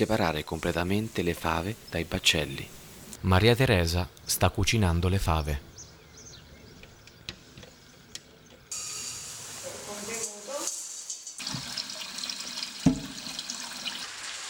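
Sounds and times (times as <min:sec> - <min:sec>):
speech: 0:00.0 - 0:05.7
cold water pouring into a container of fava beans for soaking: 0:10.7 - 0:14.4.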